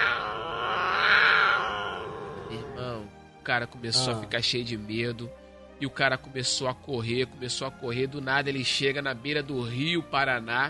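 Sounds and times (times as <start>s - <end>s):
man's voice imitating a jaguar's growl: 0.0s - 2.9s
speech: 3.4s - 10.6s.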